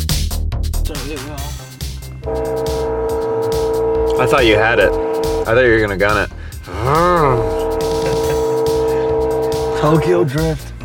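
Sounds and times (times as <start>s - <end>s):
speech: 1.0s - 1.6s, 2.2s - 2.7s, 4.2s - 7.6s, 9.8s - 10.7s
small train horn: 2.2s - 6.2s, 7.3s - 10.2s
laughter: 6.7s - 9.2s.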